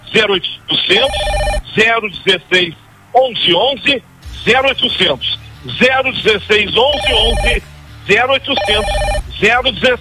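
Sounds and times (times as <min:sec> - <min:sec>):
speech: 0:00.1 - 0:09.9
telephone ringing: 0:00.6 - 0:02.5, 0:06.8 - 0:07.6, 0:08.5 - 0:09.7
sustained electronic tone: 0:00.7 - 0:01.8, 0:06.8 - 0:07.6.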